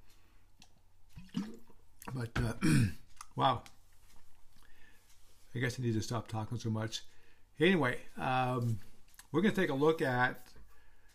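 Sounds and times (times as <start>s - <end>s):
sipping water: 0.6s - 3.4s
speech: 2.1s - 3.8s, 5.5s - 10.5s.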